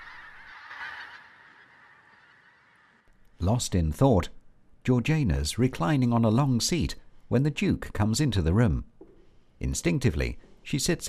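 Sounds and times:
flock of birds honking over treetops of estate grounds: 0:00.0 - 0:03.1
speech: 0:03.4 - 0:08.9, 0:09.6 - 0:11.0.

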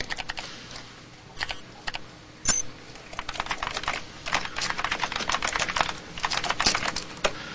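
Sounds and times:
typing a password on a computer keyboard: 0:00.0 - 0:00.4, 0:03.1 - 0:07.1.

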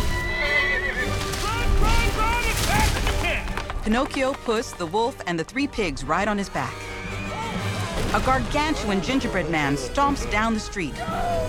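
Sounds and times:
donkey whinnying cries: 0:00.0 - 0:01.3, 0:06.8 - 0:08.0
donkey hooves clattering while galloping down a street: 0:00.0 - 0:09.6
speech: 0:03.9 - 0:06.9, 0:08.1 - 0:11.4.

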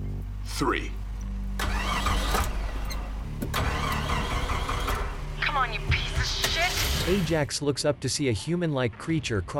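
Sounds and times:
truck engine rumbling in a shop: 0:00.0 - 0:07.5
speech: 0:00.6 - 0:01.0, 0:05.6 - 0:09.5
truck engine starter cranking with ignition key in a shop: 0:01.6 - 0:05.4, 0:06.2 - 0:07.4.

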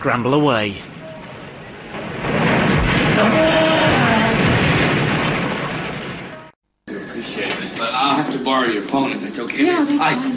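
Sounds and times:
speech: 0:00.0 - 0:00.9, 0:03.2 - 0:03.8, 0:08.1 - 0:10.3
fuel pumps exploding into a huge fireball: 0:00.9 - 0:06.6.

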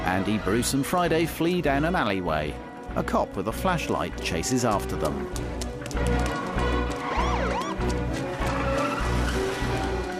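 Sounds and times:
speech: 0:00.1 - 0:06.7
police car tires screeching while braking to a halt: 0:06.9 - 0:10.1.

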